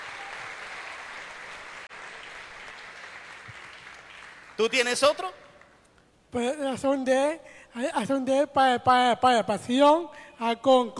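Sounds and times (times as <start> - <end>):
audience applause: 0.0 - 4.6
speech: 4.6 - 5.4, 6.3 - 10.9.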